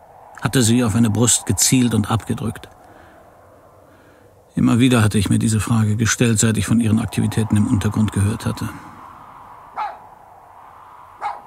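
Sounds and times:
speech: 0.4 - 2.8, 4.6 - 8.9
dog barking: 9.8 - 10.0, 11.2 - 11.4.

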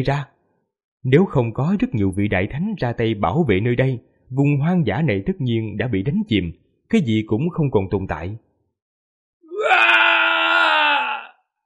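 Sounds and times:
speech: 0.0 - 0.3, 1.0 - 8.4
man screaming in anguish: 9.5 - 11.5.

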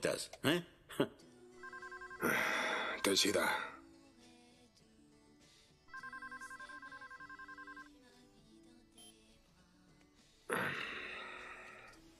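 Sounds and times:
speech: 0.0 - 1.3, 2.2 - 3.8
telephone ringing for an incoming call: 1.6 - 3.6, 5.9 - 8.0.

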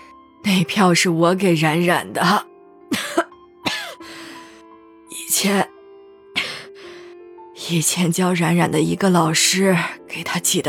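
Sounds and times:
speech: 0.5 - 2.5, 5.4 - 5.7, 7.7 - 10.6
weak drowsy woman coughing while lying ill in bed: 2.9 - 4.0.

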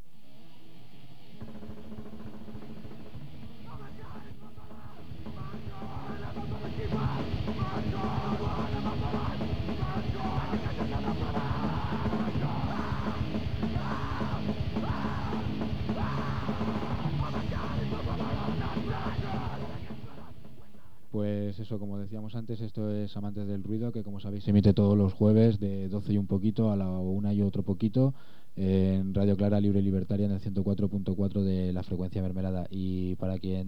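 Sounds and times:
protest crowd chanting rhythmically: 3.7 - 20.4
speech: 22.3 - 33.6.

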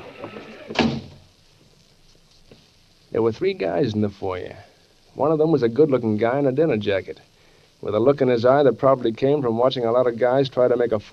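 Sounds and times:
door opening and shutting: 0.0 - 1.2
faint knock or creak: 0.0 - 1.2
low hum: 0.0 - 11.1
speech: 3.1 - 11.1.

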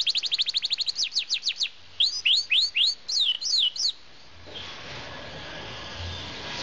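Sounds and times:
Norwich canary singing at a canary show: 0.0 - 4.0
background noise at a canary show: 0.0 - 6.6.

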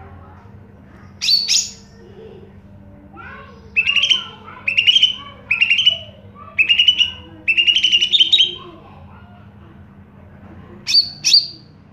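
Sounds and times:
greater green leafbird singing: 1.2 - 2.0, 3.7 - 8.7, 10.9 - 11.7.

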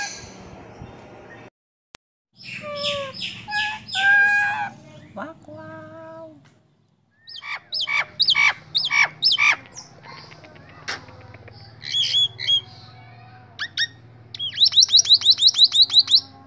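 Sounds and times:
Nias hill myna giving nasal note, loud sharp calls and whistles: 2.4 - 4.8, 7.2 - 13.0, 13.6 - 16.4
low background hum: 2.4 - 16.4.

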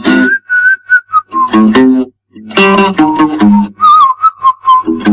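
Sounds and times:
person whistling a tune: 0.1 - 1.7, 3.1 - 5.1.

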